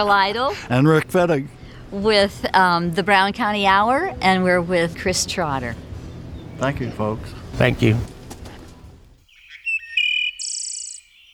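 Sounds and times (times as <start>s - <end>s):
speech: 0.0s - 5.9s, 6.6s - 8.1s
warbler singing from the tallest treetops in woods: 5.9s - 8.2s, 9.2s - 11.3s
rustling noise: 7.6s - 9.2s.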